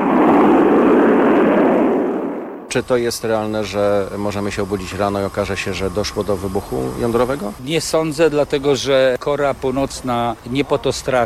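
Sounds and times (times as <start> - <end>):
rocket launch ignition roar: 0.0 - 8.2
speech: 2.7 - 11.2.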